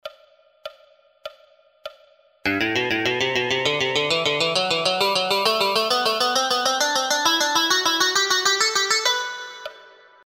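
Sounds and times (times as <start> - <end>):
scales in groups of three: 2.5 - 9.8.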